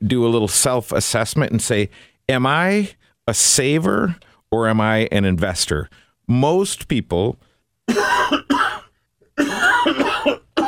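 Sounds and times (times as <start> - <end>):
speech: 0.0 - 8.4
person coughing harshly: 7.9 - 10.6.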